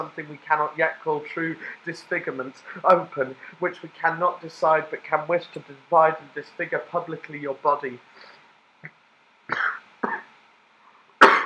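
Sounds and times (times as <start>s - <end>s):
speech: 0.0s - 9.7s
throat clearing: 8.8s - 10.3s, 11.2s - 11.4s
person coughing: 9.5s - 10.3s, 11.2s - 11.4s.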